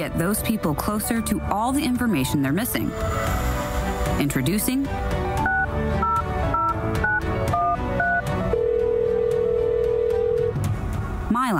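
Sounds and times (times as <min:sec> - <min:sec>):
speech: 0:00.0 - 0:03.5, 0:04.2 - 0:05.2
rhythmic music bed: 0:02.8 - 0:08.6
landline telephone two-pitch keypad beeps: 0:05.4 - 0:10.4
long steady landline telephone tone: 0:08.0 - 0:10.6.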